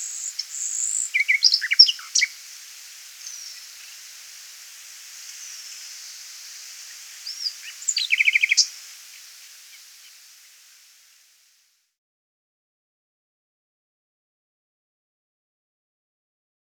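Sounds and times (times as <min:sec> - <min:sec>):
Common nightingale singing: 0:00.0 - 0:11.2.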